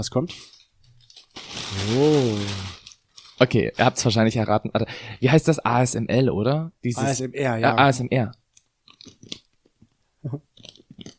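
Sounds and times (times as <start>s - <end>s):
speech: 0.0s - 0.6s, 1.7s - 2.8s, 3.4s - 8.4s, 10.2s - 10.5s
crunchy chewing of potato chips from a bag: 0.3s - 3.4s, 8.8s - 9.6s, 10.5s - 11.1s.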